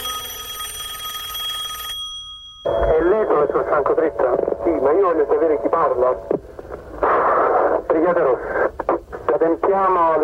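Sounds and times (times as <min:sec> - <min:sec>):
telephone bell ringing: 0:00.0 - 0:04.9
speech: 0:03.4 - 0:06.4, 0:07.9 - 0:08.7, 0:09.4 - 0:10.2.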